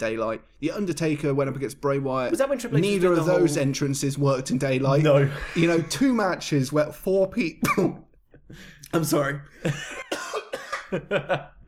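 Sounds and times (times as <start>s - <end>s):
speech: 0.0s - 10.2s, 10.9s - 11.6s
harsh coughing: 7.6s - 8.1s, 9.7s - 11.2s.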